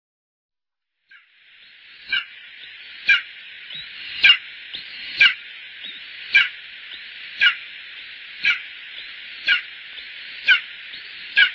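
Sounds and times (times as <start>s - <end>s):
background hiss: 0.8s - 11.5s
Bonelli's eagle yelping: 2.0s - 2.4s, 3.0s - 7.7s, 8.4s - 9.8s, 10.4s - 11.5s.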